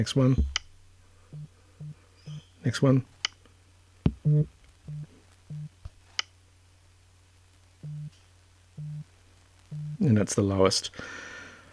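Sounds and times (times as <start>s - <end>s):
speech: 0.0s - 0.6s, 2.6s - 3.2s, 4.2s - 5.1s, 10.0s - 11.2s
phone vibration haptic pulses: 1.2s - 2.4s, 4.1s - 5.8s, 7.8s - 8.2s, 8.8s - 9.1s, 9.7s - 10.0s.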